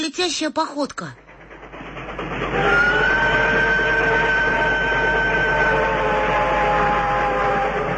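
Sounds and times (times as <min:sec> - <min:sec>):
speech: 0:00.0 - 0:01.3
approaching train rumbling: 0:00.0 - 0:07.9
long sustained train horn or whistle tone: 0:02.5 - 0:07.9.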